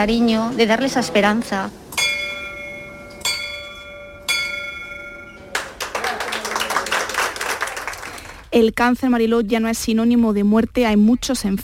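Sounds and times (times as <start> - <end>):
speech: 0.0 - 1.8, 8.5 - 11.6
hand bell rung to mark end of cancer treatment: 2.0 - 5.8
enthusiastic applause and clapping: 5.5 - 8.5.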